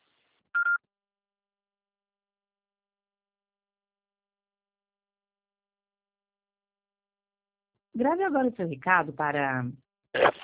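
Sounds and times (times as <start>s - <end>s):
voicemail beep before a message is recorded: 0.6s - 0.8s
speech: 8.0s - 10.4s.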